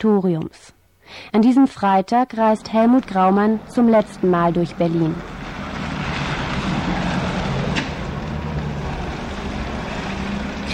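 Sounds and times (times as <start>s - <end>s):
speech: 0.0s - 5.4s
small black hearse van engine rumble pulling up at a crematorium: 2.3s - 10.7s
road hiss: 3.1s - 10.7s.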